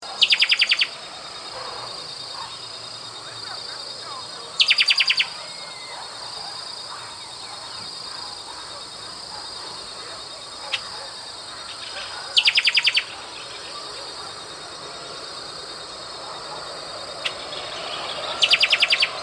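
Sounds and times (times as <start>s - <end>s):
steady high hiss: 0.0s - 19.2s
bird song: 0.1s - 2.8s, 4.0s - 8.8s, 10.6s - 14.5s, 16.5s - 19.2s.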